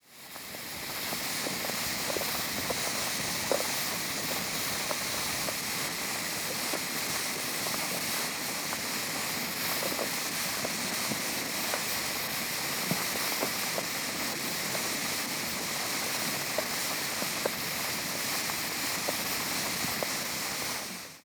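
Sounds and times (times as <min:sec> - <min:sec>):
hot geyser steam release with medium pressure: 0:00.0 - 0:21.2
light muddy bubbles in a geyser: 0:00.1 - 0:21.2.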